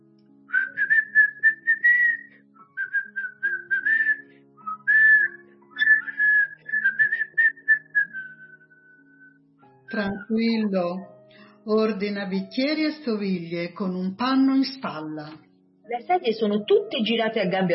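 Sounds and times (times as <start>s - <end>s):
plump man whistling a tune while tidying up a bar: 0.5s - 10.4s
speech: 9.9s - 11.1s, 11.7s - 17.7s.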